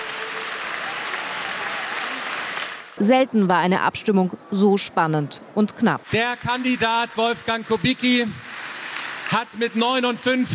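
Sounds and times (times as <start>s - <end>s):
large crowd applauding at a party convention: 0.0s - 3.0s, 6.1s - 10.5s
speech: 3.0s - 8.4s, 9.3s - 10.5s.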